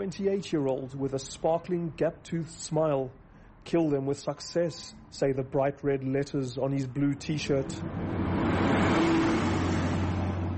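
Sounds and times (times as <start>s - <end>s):
speech: 0.0s - 8.9s
road noise in Johannesburg city centre traffic: 0.0s - 10.5s
minibus taxi engine humming in Johannesburg city centre traffic: 7.2s - 10.5s.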